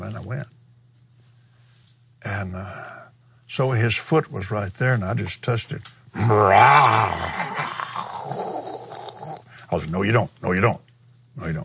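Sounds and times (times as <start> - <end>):
speech: 0.0 - 0.6, 2.2 - 7.7, 9.7 - 10.8, 11.4 - 11.6
deep guttural human growl: 6.2 - 9.5.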